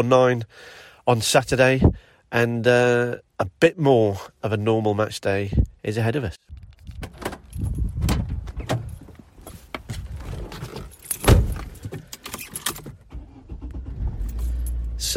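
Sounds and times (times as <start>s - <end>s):
speech: 0.0s - 7.0s
keys jangling: 6.7s - 8.0s, 10.8s - 12.9s, 14.2s - 14.9s
quiet shuffling in a car cabin: 6.9s - 15.0s
solid car door thud: 11.2s - 11.7s.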